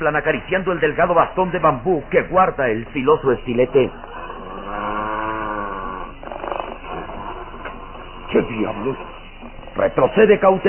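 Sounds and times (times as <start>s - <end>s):
speech: 0.0s - 4.2s, 8.6s - 9.1s, 9.8s - 10.6s
deep rumbling threatening growl with snarls: 3.5s - 8.4s.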